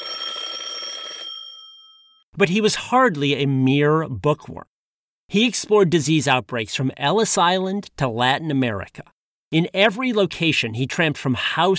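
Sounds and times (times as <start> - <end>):
alarm clock ringing with a rapid metallic rattling bell: 0.0 - 2.2
speech: 2.4 - 4.7, 5.3 - 11.7.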